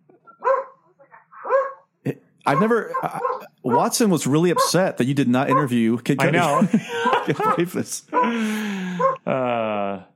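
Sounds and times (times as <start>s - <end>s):
dog barking: 0.4s - 0.8s, 1.4s - 1.9s, 2.5s - 3.9s, 4.5s - 4.9s, 5.5s - 5.8s, 6.4s - 9.2s
speech: 2.1s - 9.0s
laughter: 2.5s - 4.0s, 5.5s - 10.0s.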